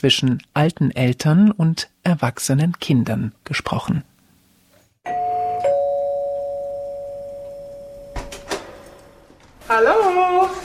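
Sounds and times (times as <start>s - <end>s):
speech: 0.0s - 4.1s, 9.7s - 10.6s
two-tone doorbell chiming at apartment door: 5.1s - 9.2s.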